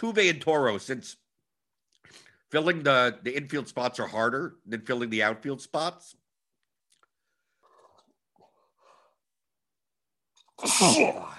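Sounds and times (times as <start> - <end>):
speech: 0.0 - 1.2, 2.0 - 6.2, 10.6 - 11.3
person sneezing: 10.4 - 11.3.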